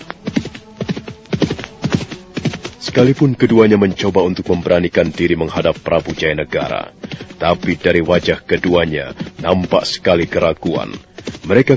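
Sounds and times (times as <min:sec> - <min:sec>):
horse hooves clip-clopping as riders travel toward a palace: 0:00.0 - 0:11.7
speech: 0:02.9 - 0:11.7.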